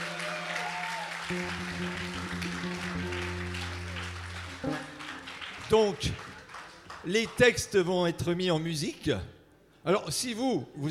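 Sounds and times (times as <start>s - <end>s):
room full of people applauding: 0.0s - 7.5s
speech: 1.3s - 2.5s, 5.7s - 6.2s, 7.0s - 10.8s
sustained humming musical tones: 1.3s - 5.6s.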